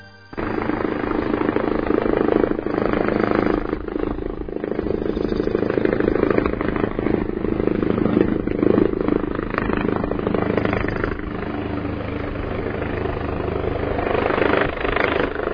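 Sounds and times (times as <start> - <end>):
helicopter rotor roar at a Saba River riverbank heliport during emergency drill: 0.0 - 15.5.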